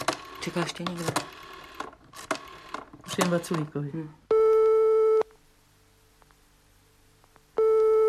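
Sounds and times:
speech: 0:00.4 - 0:01.3, 0:03.2 - 0:04.2
telephone line tone on an unanswered call: 0:04.3 - 0:05.2, 0:07.6 - 0:08.0.

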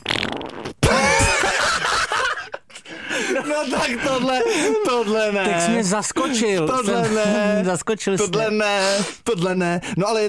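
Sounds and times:
loud drawn-out fart: 0:00.0 - 0:00.9
laughter: 0:00.8 - 0:08.6
speech: 0:03.5 - 0:10.2.

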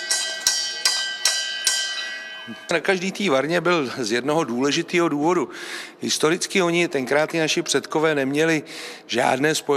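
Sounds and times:
brewery bell beside the brewing kettles rung to signal a finished batch: 0:00.0 - 0:03.4
speech: 0:02.5 - 0:09.7.

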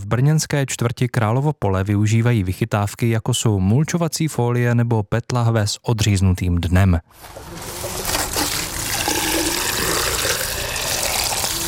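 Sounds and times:
speech: 0:00.1 - 0:08.0
drinking tap water gushing as gardeners water beds at an allotment in Brno: 0:07.4 - 0:11.6.

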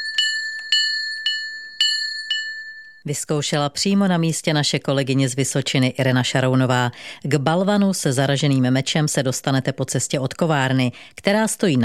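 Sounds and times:
small village chapel bell ringing: 0:00.0 - 0:03.0
speech: 0:03.0 - 0:11.8.

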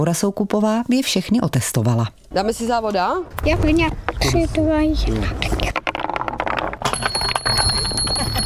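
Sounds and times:
speech: 0:00.0 - 0:05.7
busy clatter of marbles rolling on wooden marble run: 0:05.6 - 0:08.4
small bells on a wooden marble run in a park chiming: 0:06.9 - 0:08.4.

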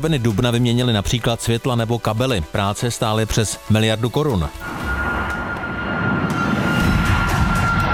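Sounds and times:
speech: 0:00.0 - 0:05.0
airplane flying overhead: 0:04.6 - 0:07.9.

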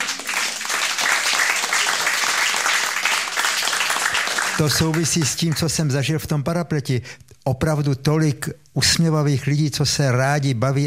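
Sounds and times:
crowd applauding: 0:00.0 - 0:05.7
speech: 0:04.6 - 0:10.8.

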